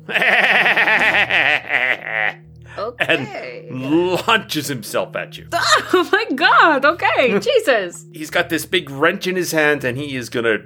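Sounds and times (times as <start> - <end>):
speech: 0.0 - 0.4, 4.3 - 10.6
voice imitating a maniacal goat-like bleating laugh: 0.0 - 4.1.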